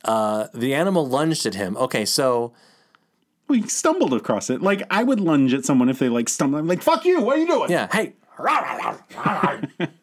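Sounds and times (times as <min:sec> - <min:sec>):
speech: 0:00.0 - 0:02.8, 0:03.5 - 0:10.0
person imitating an alligator with a growly bark: 0:08.4 - 0:09.6
laughter: 0:09.0 - 0:10.0.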